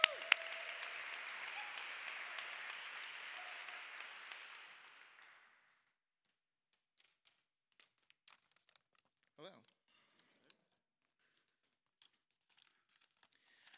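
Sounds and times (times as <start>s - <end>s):
audience clapping: 0.0s - 5.8s.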